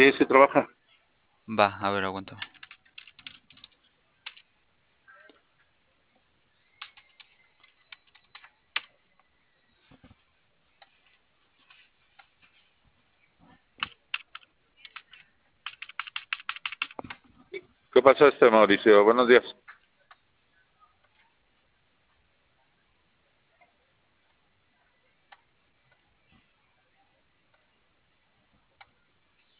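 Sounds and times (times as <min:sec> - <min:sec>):
speech: 0:00.0 - 0:00.8, 0:01.5 - 0:02.5, 0:18.0 - 0:19.6
computer keyboard typing: 0:02.3 - 0:04.5, 0:06.8 - 0:09.3, 0:13.8 - 0:17.3.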